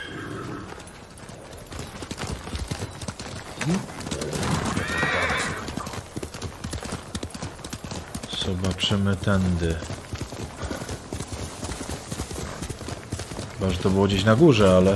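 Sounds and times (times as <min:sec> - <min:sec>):
horse whinnying: 0:00.0 - 0:00.8, 0:03.6 - 0:05.9
horse hooves clip-clopping: 0:00.0 - 0:14.9
speech: 0:03.7 - 0:04.0, 0:08.5 - 0:10.0, 0:13.6 - 0:14.9.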